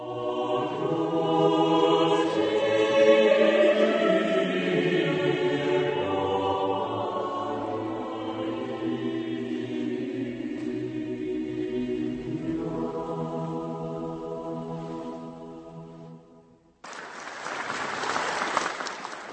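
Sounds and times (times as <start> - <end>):
choir from Brno holding a sustained chord in the Nepomuk Church: 0.0 - 16.5
loud applause from a large audience in a church: 16.8 - 19.3.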